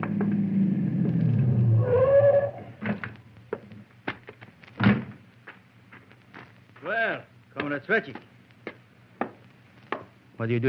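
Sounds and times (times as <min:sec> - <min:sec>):
car engine rumbling as the car approaches around a curve and stops: 0:00.0 - 0:03.6
speech: 0:07.8 - 0:08.3, 0:10.4 - 0:10.6.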